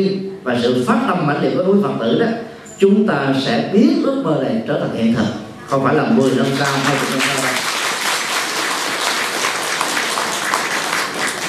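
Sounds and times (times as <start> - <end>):
speech: 0.0 - 7.7
crowd applauding with many hands clapping: 6.2 - 11.4.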